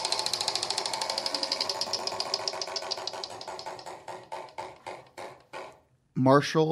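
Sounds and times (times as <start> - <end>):
prize wheel clicking during a team quiz game: 0.0 - 4.8.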